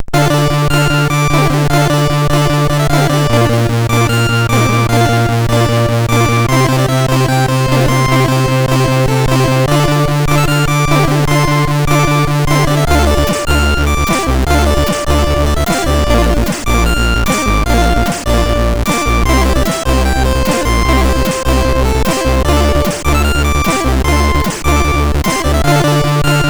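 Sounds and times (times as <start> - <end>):
MOS6581R4 SID chip synth: 0.0 - 26.4.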